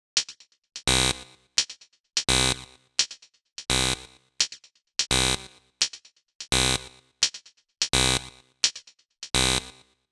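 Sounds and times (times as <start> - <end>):
hi-hats in D: 0.2 - 1.0, 1.6 - 3.8, 4.4 - 5.2, 5.8 - 9.4.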